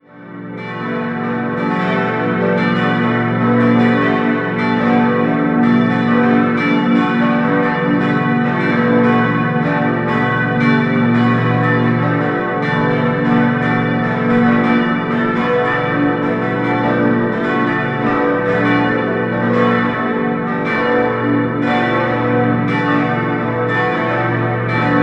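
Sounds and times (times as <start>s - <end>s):
church bells ringing in Erbendorf: 0.0s - 25.0s.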